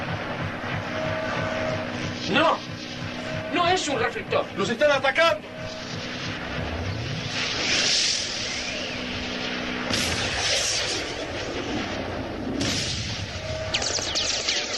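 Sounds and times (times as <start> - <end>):
radio-drama effect of five airplanes flying overhead: 0.0 - 14.7
speech: 2.3 - 2.8, 3.5 - 6.0.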